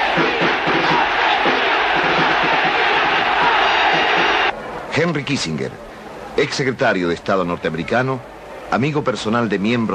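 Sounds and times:
stadium crowd at a football match whistling and jeering: 0.0 - 4.5
speech: 5.0 - 9.9.

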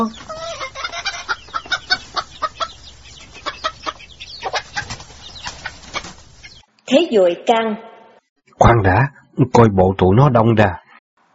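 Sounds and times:
speech: 0.0 - 0.3, 6.9 - 7.9, 8.6 - 10.8
chickens squawking and clucking near a thicket: 0.0 - 6.7.

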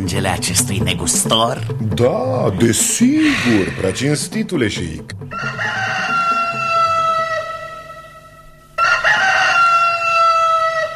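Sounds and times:
speech: 0.0 - 6.0
roosters crowing: 5.3 - 10.9.

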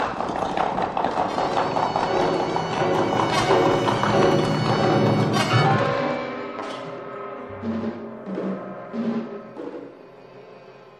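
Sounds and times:
horses galloping along a road: 0.0 - 5.6
quieter sustained tonal sounds: 1.4 - 10.9.

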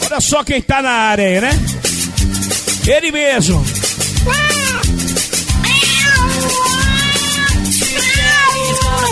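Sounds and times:
speech: 0.2 - 1.9, 2.9 - 4.6
cat in heat meowing in wailing cries: 4.2 - 9.1.

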